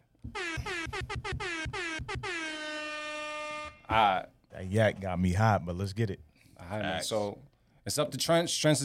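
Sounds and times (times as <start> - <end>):
loud blaring air horn blasts: 0.2 - 3.9
speech: 3.9 - 8.8.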